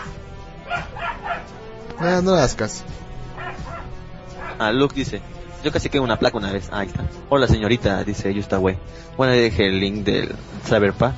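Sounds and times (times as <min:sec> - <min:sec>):
dog yelping barks: 0:00.0 - 0:01.6, 0:03.4 - 0:04.7
speech: 0:02.0 - 0:03.0, 0:04.6 - 0:11.1.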